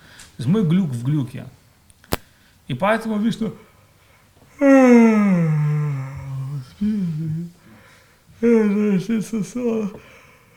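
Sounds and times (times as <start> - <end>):
speech: 0.4 - 1.6, 2.7 - 3.7, 8.4 - 10.1
voice imitating a long deep yawn: 4.5 - 7.7, 8.4 - 10.1
short wavering vocal sounds: 4.5 - 10.5.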